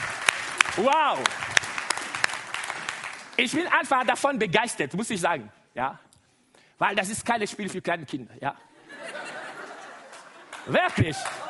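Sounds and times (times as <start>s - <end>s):
audience clapping: 0.0s - 4.3s, 9.8s - 11.4s
speech: 0.8s - 1.5s, 3.4s - 6.0s, 6.8s - 9.2s, 10.6s - 11.4s
laughter: 8.7s - 11.4s.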